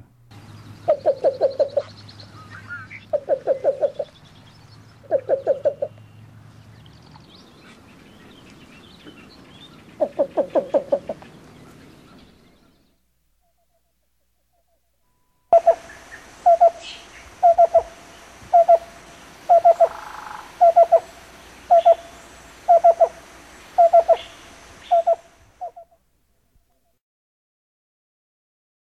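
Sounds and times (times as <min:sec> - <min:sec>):
Least Bittern calling: 0:00.3 - 0:14.9, 0:15.5 - 0:26.0.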